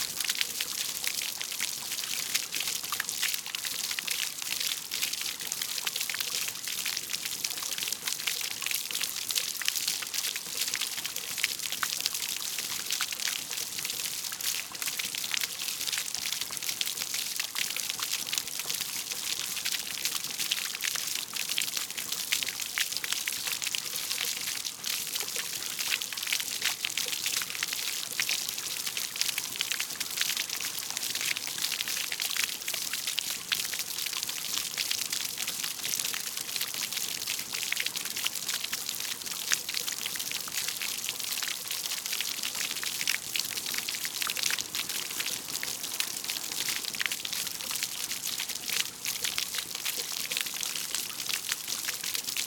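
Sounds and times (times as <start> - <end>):
small fountain with multiple squirts splashing on the ground: 0.0 - 52.4.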